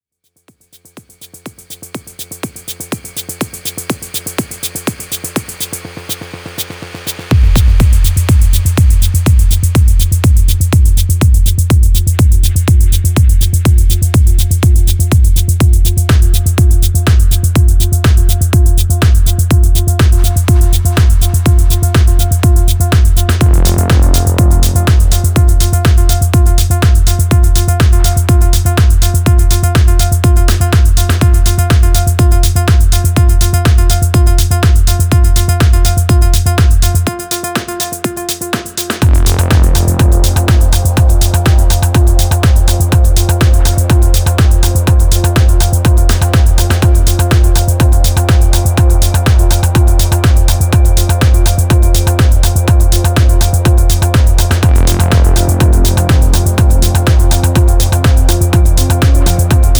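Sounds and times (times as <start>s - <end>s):
melodic techno music: 0.3s - 59.7s.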